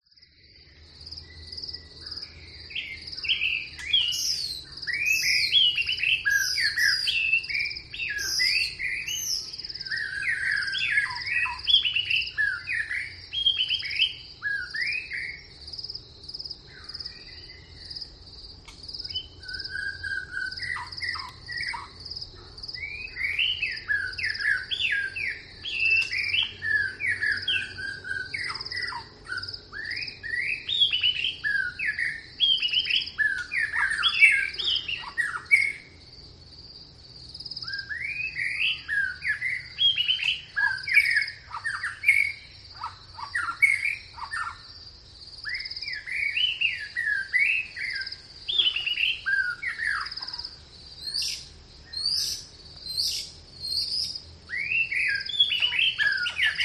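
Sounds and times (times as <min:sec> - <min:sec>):
jungle rainforest birds singing in daytime in Vietnam: 0:00.0 - 0:56.6.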